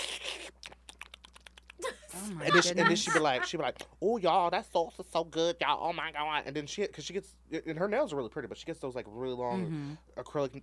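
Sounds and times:
voice imitating airy eating slurp: 0.0 - 1.8
voice imitating wet lip-smacking clicks: 0.2 - 1.8
laughter: 1.8 - 3.5
speech: 2.2 - 10.6.

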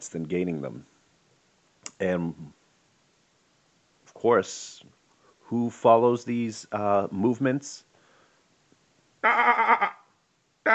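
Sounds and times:
speech: 0.0 - 1.0, 2.0 - 2.6, 4.1 - 7.9, 9.2 - 10.0
sheep bleating: 9.2 - 10.0.

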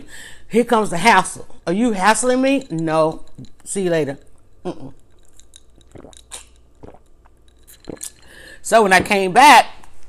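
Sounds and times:
speech: 0.1 - 5.0, 7.9 - 9.8
person sipping lemonade: 4.4 - 8.6.

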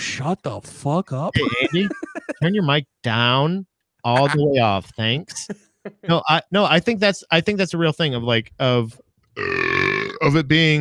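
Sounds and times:
speech: 0.2 - 10.7
laughter: 1.4 - 2.6, 4.1 - 4.6
loud deep burp: 9.4 - 10.4.

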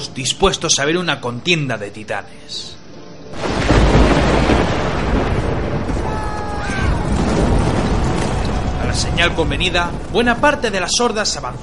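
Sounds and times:
speech: 0.2 - 2.8, 9.0 - 11.6
distant thunder rolling in a deep continuous rumble: 3.4 - 11.6.

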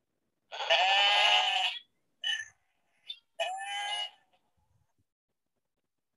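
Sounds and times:
young goats bleating: 0.5 - 1.9, 3.4 - 4.4.

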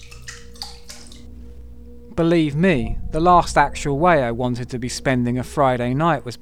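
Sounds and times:
gentle water splashing inside a closed toilet: 0.0 - 1.8
low steady hum: 0.0 - 6.3
speech: 2.2 - 6.3.

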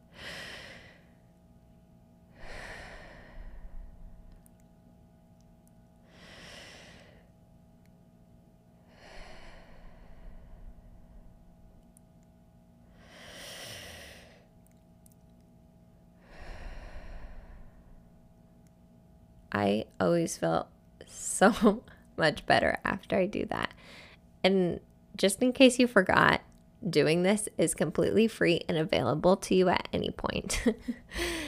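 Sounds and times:
slow deep breaths: 0.0 - 1.2, 2.3 - 4.4, 6.0 - 7.3, 8.8 - 11.7, 12.9 - 14.5, 16.2 - 18.2, 23.8 - 24.2, 31.0 - 31.4
speech: 19.6 - 20.7, 21.4 - 31.4.

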